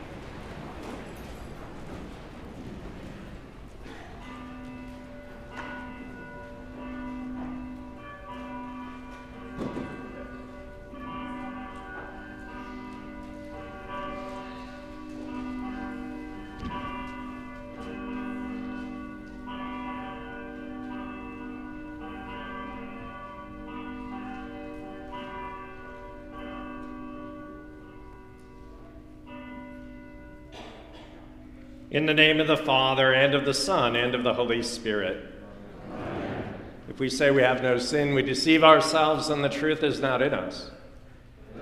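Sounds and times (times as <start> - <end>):
church bells ringing peals to call to worship: 0.0 - 35.8, 36.4 - 41.4
speech: 31.9 - 35.3, 37.0 - 40.8.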